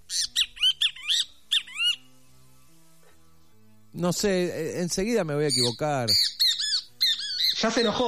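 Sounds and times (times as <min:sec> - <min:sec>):
southern screamer honking squawks: 0:00.0 - 0:02.0, 0:05.5 - 0:08.0
speech: 0:04.0 - 0:06.4, 0:07.6 - 0:08.0.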